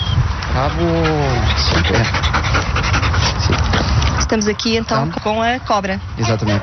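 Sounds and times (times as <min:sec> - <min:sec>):
speech: 0:00.6 - 0:02.9, 0:04.3 - 0:06.6
female Belgian Malinois panting during search and rescue training: 0:00.6 - 0:05.2.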